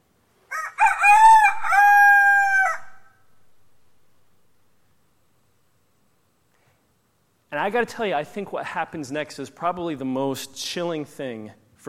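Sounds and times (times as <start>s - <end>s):
rooster crowing: 0.5s - 3.4s
speech: 7.6s - 11.8s.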